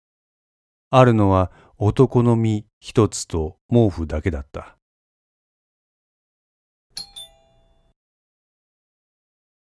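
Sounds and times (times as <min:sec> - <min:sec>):
speech: 0:00.9 - 0:04.8
intercom doorbell two-note ding-dong chime: 0:07.0 - 0:08.0.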